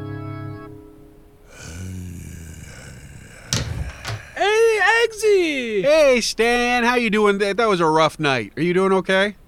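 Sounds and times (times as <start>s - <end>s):
sharp loud clunks: 3.4s - 4.4s
door opening at night in the desert: 3.4s - 4.5s
speech: 5.2s - 9.4s.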